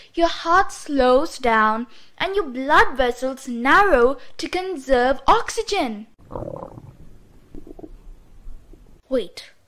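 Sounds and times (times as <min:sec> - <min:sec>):
speech: 0:00.1 - 0:06.8, 0:09.1 - 0:09.6
stomach grumbling: 0:06.2 - 0:08.9.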